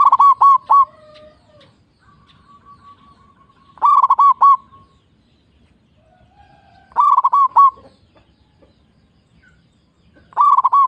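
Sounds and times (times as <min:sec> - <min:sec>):
zebra dove song of quick trilled coos: 0:00.0 - 0:04.9, 0:06.4 - 0:08.3, 0:10.2 - 0:10.8.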